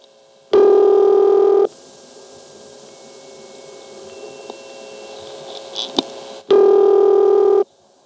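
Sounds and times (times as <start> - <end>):
faint steady hum on the telephone line: 0.0 - 8.0
loud buzzy telephone ringing-machine tone burst on the line in Cabot: 0.5 - 7.6.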